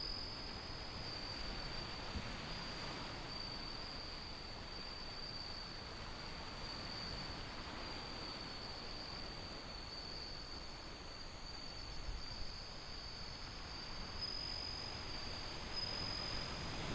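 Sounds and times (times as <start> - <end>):
bell cricket song: 0.0 - 16.9
rushing wind: 0.0 - 16.9
ocean waves: 0.3 - 16.9.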